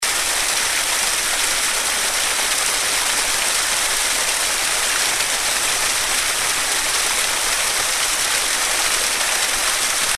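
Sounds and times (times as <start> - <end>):
waterfall: 0.0 - 10.1.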